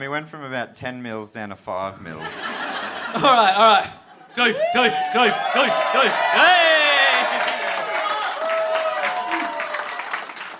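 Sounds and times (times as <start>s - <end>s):
speech: 0.0s - 6.8s
laughter: 2.1s - 8.0s
crowd cheering and whooping: 4.3s - 10.5s
room full of people clapping: 4.4s - 10.5s.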